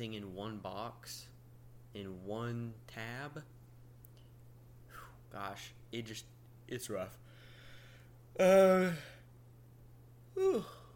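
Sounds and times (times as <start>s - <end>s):
speech: 0.0s - 1.3s, 2.0s - 3.6s, 4.9s - 7.3s, 8.4s - 9.2s, 10.4s - 10.8s
person yawning: 8.4s - 9.3s, 10.4s - 10.9s.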